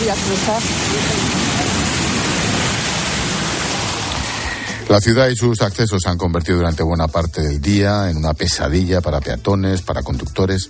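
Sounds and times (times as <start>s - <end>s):
rushing water flooding a city street: 0.0s - 4.9s
speech: 0.1s - 1.4s, 4.9s - 10.6s.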